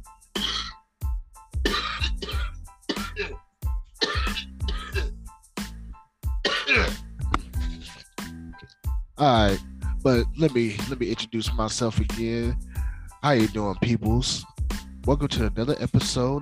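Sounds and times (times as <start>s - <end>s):
person with a cold clearing throat: 0.4s - 0.8s, 1.7s - 3.4s, 4.0s - 5.2s, 6.5s - 7.0s
person with a cold coughing: 0.4s - 0.8s, 1.6s - 3.4s, 4.0s - 5.2s, 6.4s - 8.0s
speech: 9.2s - 14.5s, 15.1s - 16.4s.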